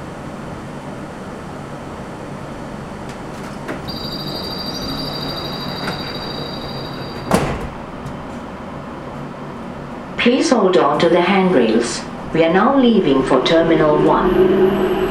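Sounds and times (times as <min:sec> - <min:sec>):
high even warning tone of train doors: 0:03.9 - 0:07.6
airport shuttle train doors sliding shut: 0:05.5 - 0:08.5
airport shuttle train doors thudding shut: 0:07.1 - 0:07.8
speech: 0:10.2 - 0:15.0.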